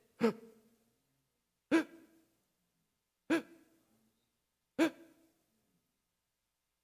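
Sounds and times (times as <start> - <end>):
person imitating gasping for air: 0.0 - 0.5, 1.7 - 2.2, 3.3 - 3.7.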